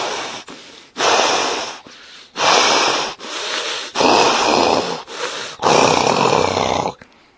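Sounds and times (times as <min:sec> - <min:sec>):
heavy angry snorting breaths of a serpent: 0:00.0 - 0:07.0.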